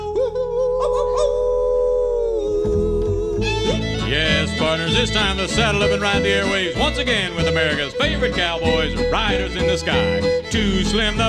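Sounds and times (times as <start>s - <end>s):
person imitating a wolf howling: 0.0s - 3.9s
low steady rumble: 0.3s - 11.2s
speech: 4.6s - 11.2s.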